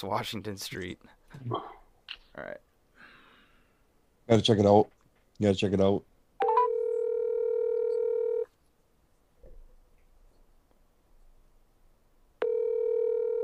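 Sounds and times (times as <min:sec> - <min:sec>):
speech: 0:00.0 - 0:01.8, 0:02.4 - 0:02.7, 0:04.3 - 0:06.1
phone ringback tone on an outgoing call to a restaurant: 0:06.4 - 0:08.5, 0:12.4 - 0:13.4.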